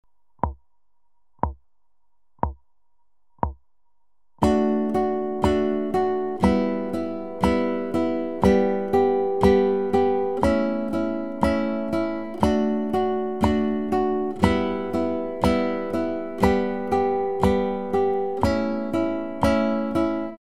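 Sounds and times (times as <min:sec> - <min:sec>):
acoustic pop guitar strumming: 0:04.4 - 0:20.4.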